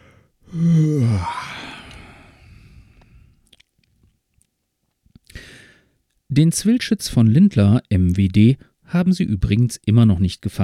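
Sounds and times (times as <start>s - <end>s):
tired person giving a long voiced yawn: 0.4s - 3.0s
speech: 0.5s - 1.4s, 6.4s - 10.6s.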